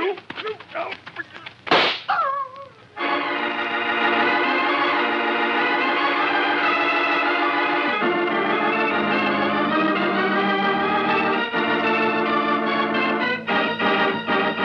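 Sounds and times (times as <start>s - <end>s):
voices: 0.0s - 3.0s
single sharp gunshot: 1.7s - 2.1s
short cry: 2.1s - 2.9s
dramatic music: 3.0s - 14.6s.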